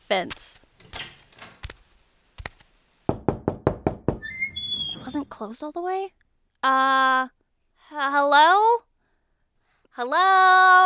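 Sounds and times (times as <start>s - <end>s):
speech: 0.1s - 0.6s, 5.1s - 8.9s, 10.0s - 10.8s
knocking on the front door of a two-story house: 3.1s - 5.0s.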